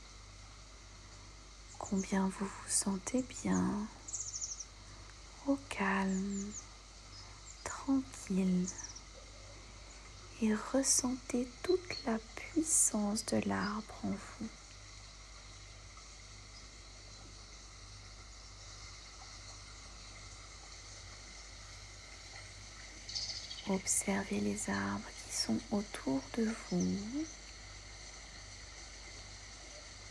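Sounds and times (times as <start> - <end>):
small stream trickling: 0.0 - 30.0
person speaking calmly: 1.8 - 4.0, 5.4 - 6.6, 7.7 - 8.9, 10.4 - 14.5, 23.7 - 27.3
speech: 1.8 - 4.0, 5.5 - 6.7, 7.9 - 8.9, 10.4 - 14.6, 23.7 - 27.4.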